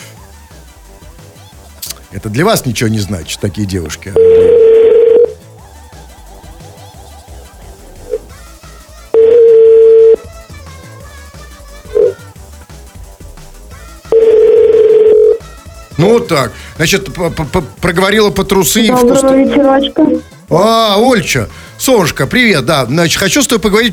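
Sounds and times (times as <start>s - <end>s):
speech: 2.1s - 4.7s, 16.3s - 23.9s
telephone line tone: 4.2s - 5.4s, 9.2s - 10.2s, 14.1s - 15.4s.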